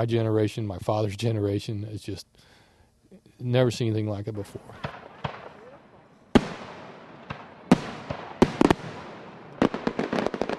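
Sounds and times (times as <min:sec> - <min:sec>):
speech: 0:00.0 - 0:05.0
fireworks display booming: 0:04.6 - 0:10.5.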